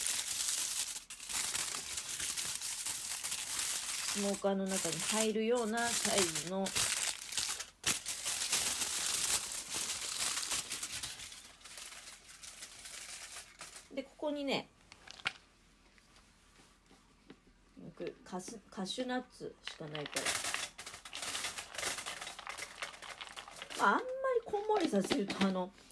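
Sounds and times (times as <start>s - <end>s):
aluminum foil crinkling as it is folded and shaped: 0.0s - 14.0s, 19.7s - 25.9s
speech: 4.2s - 7.0s, 14.2s - 14.7s, 18.3s - 20.5s, 23.8s - 25.9s.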